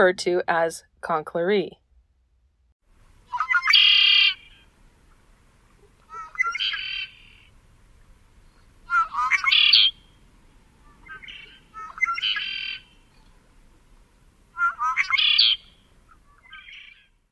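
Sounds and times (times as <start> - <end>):
speech: 0.0 - 1.8
male red-winged blackbird singing gurgling trilled song: 3.3 - 4.7, 6.1 - 7.5, 8.9 - 10.1, 10.8 - 13.1, 14.6 - 17.1.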